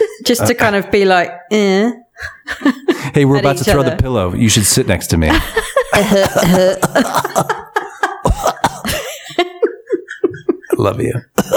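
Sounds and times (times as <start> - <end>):
speech: 0.3 - 7.6, 10.8 - 11.5
voiced laugh-like sounds: 5.3 - 11.5
person coughing: 5.9 - 9.4, 11.4 - 11.5.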